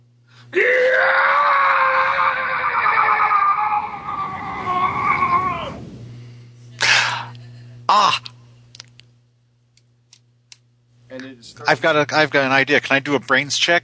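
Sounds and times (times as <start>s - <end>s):
speech: 0.5s - 0.7s, 11.7s - 13.8s
person imitating a creature's scream of agony in a tabletop game: 0.5s - 5.8s.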